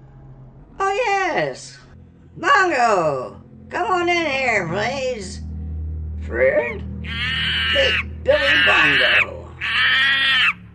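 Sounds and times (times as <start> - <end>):
speech: 1.4 - 1.8, 2.4 - 5.4, 6.3 - 10.0
chimpanzee screeching: 6.6 - 10.6.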